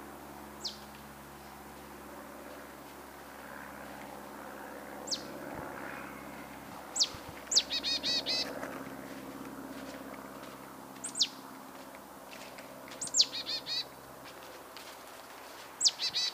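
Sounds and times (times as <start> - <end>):
steady low hum: 0.0 - 16.3
marsh tit Poecile palustris sharp high downward-slurred calls and buzzy nasal notes: 0.6 - 0.8, 5.1 - 5.3, 6.9 - 8.6, 11.0 - 11.4, 13.0 - 13.9, 15.8 - 16.3.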